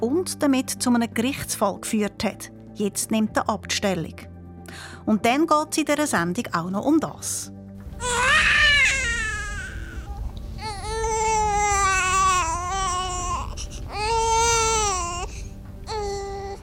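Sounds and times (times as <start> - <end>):
speech: 0.0 - 8.2
newborn baby crying: 7.9 - 16.6
newborn baby gasping breaths: 13.4 - 14.0, 15.1 - 15.6.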